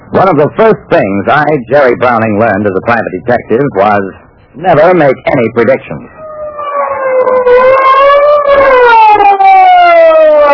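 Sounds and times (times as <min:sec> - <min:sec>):
speech: 0:00.2 - 0:06.2
police car siren wailing as the car arrives at a barricade: 0:06.1 - 0:10.5.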